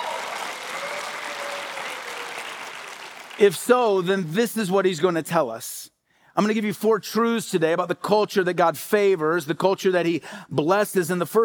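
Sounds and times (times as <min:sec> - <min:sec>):
room full of people applauding: 0:00.0 - 0:03.6
speech: 0:03.4 - 0:11.4.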